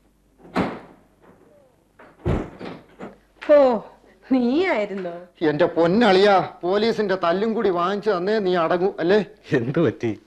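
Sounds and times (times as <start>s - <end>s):
heavy thuds of a door being opened: 0.4s - 1.1s, 2.1s - 3.1s
speech: 3.5s - 10.2s.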